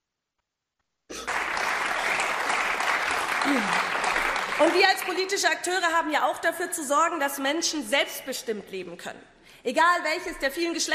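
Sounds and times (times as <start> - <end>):
audience applause: 1.1 - 5.2
speech: 3.5 - 3.9, 4.6 - 10.9.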